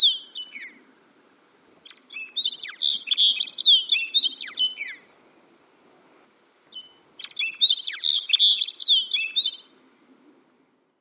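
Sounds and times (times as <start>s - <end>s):
snow bunting song of rapid twittering and warbled notes: 0.0s - 0.8s, 1.8s - 5.0s, 6.7s - 9.7s.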